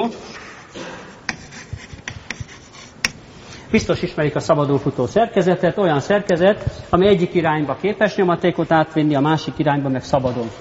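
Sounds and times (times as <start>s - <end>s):
speech: 0.0s - 0.8s, 3.7s - 10.5s
scratchy drawing strokes on a board: 0.2s - 3.2s.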